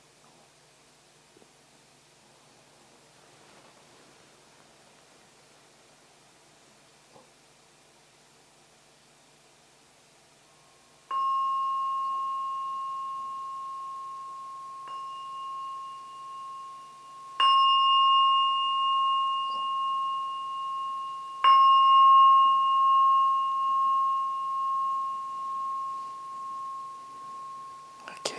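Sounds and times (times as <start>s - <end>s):
meditation bell ringing: 10.7s - 28.3s.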